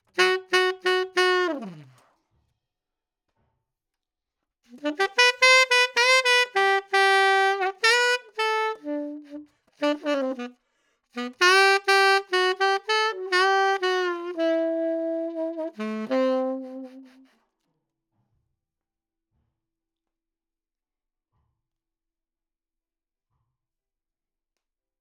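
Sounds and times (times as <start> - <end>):
saxophone: 0.0 - 2.0, 4.7 - 10.6, 11.2 - 17.3.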